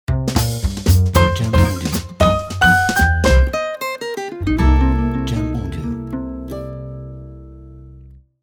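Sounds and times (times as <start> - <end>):
jazz ident: 0.1 - 3.8, 4.4 - 7.0.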